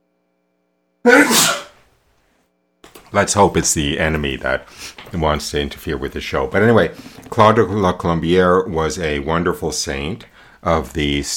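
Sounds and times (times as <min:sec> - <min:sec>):
single sharp sneeze: 0:01.1 - 0:01.8
speech: 0:03.2 - 0:11.3.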